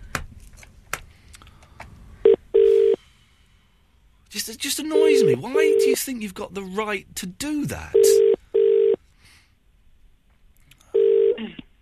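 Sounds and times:
telephone ringing tone: 0:02.2 - 0:03.0, 0:05.0 - 0:06.0, 0:07.9 - 0:09.0, 0:10.9 - 0:11.4
speech: 0:04.4 - 0:08.2.

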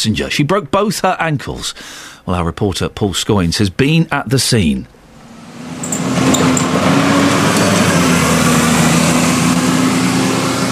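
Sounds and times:
speech: 0:00.0 - 0:05.0
bus engine rumbling while driving past bus stops: 0:04.9 - 0:10.6.

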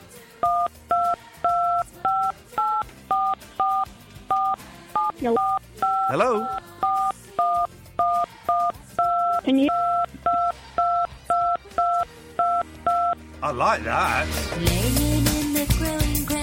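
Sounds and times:
phone keypad tones pressed by a caller on the line: 0:00.4 - 0:13.2
speech: 0:05.2 - 0:06.6, 0:09.5 - 0:09.8, 0:13.4 - 0:16.3.

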